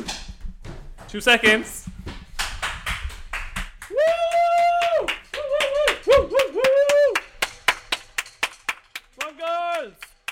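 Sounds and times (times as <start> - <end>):
speech: 1.1 - 1.9
several people clapping for the NHS: 2.2 - 10.3
people whooping and cheering: 3.8 - 7.4.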